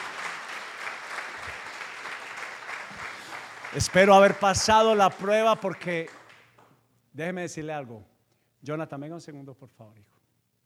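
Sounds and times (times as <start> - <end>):
audience applauding: 0.0 - 6.8
speech: 3.7 - 6.2, 7.2 - 10.2.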